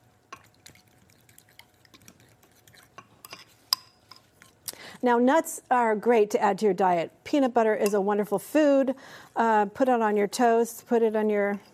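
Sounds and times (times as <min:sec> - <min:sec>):
fork whisking a mixture in a bowl: 0:00.3 - 0:04.7
speech: 0:05.0 - 0:11.7.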